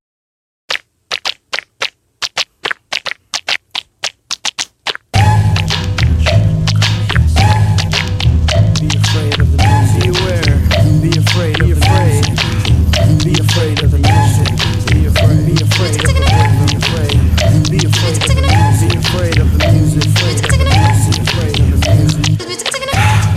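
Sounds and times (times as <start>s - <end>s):
sparse tapping percussion hits: 0.7s - 23.3s
loud dense hip-hop beat with heavy bass: 5.2s - 23.3s.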